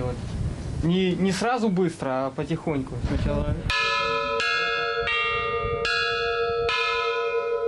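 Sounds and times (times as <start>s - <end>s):
speech: 0.8s - 3.9s
church bell struck with a hammer: 3.7s - 7.6s.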